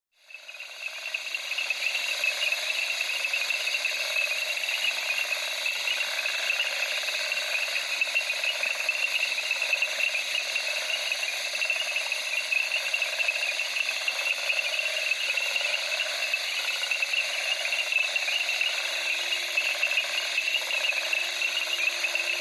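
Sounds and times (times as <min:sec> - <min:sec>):
crickets at night in the Okavango: 0:00.2 - 0:22.3
frogs in reeds in the Okavango: 0:00.2 - 0:22.3.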